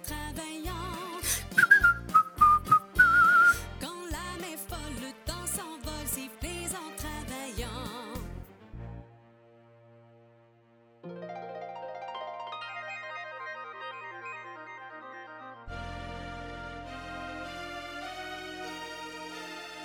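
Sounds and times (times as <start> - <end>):
bouncy instrumental accompaniment: 0.0 - 9.0, 11.0 - 19.8
person whistling a lilting melody with light vibrato: 1.2 - 3.7.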